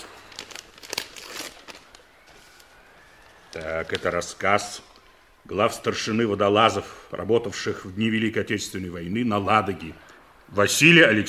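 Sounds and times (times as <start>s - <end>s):
mail package torn open in a ship's wardroom: 0.0s - 2.5s
speech: 3.6s - 4.9s, 5.5s - 11.2s.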